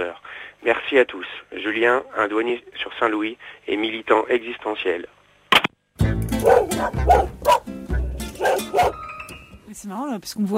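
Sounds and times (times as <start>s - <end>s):
speech: 0.0s - 5.2s, 6.4s - 7.5s, 9.8s - 10.5s
dog barking: 6.4s - 7.7s, 8.4s - 9.0s.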